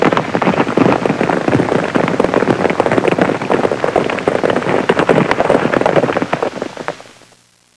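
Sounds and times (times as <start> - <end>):
horses galloping: 0.0 - 7.4.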